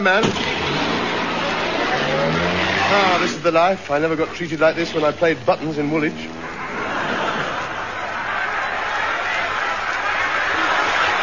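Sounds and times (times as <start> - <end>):
speech: 0.0 - 0.6, 2.1 - 6.5
large crowd on the pavements roaring and cheering: 0.0 - 11.2
people shouting: 0.6 - 3.4, 5.9 - 11.2
people laughing: 0.6 - 11.2.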